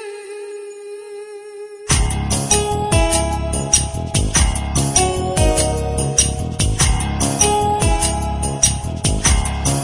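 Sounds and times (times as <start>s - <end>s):
soft beat tune: 1.9s - 9.8s.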